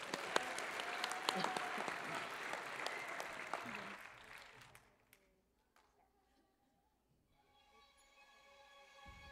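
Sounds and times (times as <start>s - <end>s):
crowd applause: 0.0s - 5.0s.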